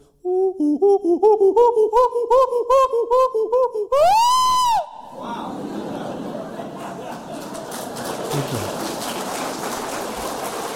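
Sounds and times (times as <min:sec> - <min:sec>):
human voice imitating chimpanzee hoots and screech: 0:00.2 - 0:05.4
speech: 0:00.6 - 0:05.8
laughter: 0:05.1 - 0:10.7.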